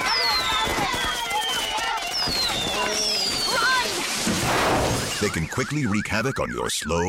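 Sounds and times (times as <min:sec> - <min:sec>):
fireworks going off in a loud dense barrage: 0:00.0 - 0:05.6
speech: 0:05.2 - 0:07.0.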